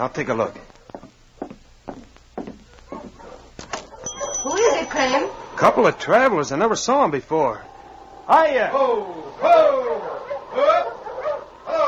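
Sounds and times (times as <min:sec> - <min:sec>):
speech: 0:00.0 - 0:00.7, 0:05.0 - 0:07.7, 0:08.3 - 0:10.0
team of sled dogs paws and sled runners thudding: 0:00.0 - 0:05.7.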